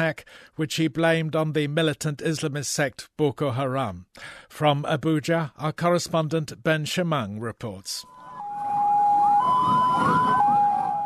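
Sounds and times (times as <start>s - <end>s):
speech: 0.0s - 8.1s
ambulance siren alternating between two pitches: 8.0s - 11.0s.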